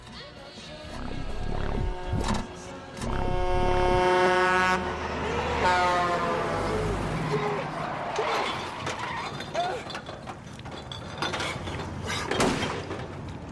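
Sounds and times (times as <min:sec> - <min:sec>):
rumbling road noise: 0:00.8 - 0:13.5
semi-truck horn blaring: 0:01.4 - 0:07.3
vehicles whooshing past: 0:01.9 - 0:09.6.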